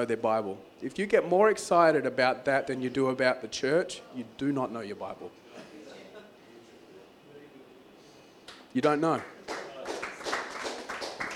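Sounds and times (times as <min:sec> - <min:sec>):
speech: 0:00.0 - 0:05.7, 0:08.7 - 0:09.4
audience clapping: 0:09.1 - 0:11.3.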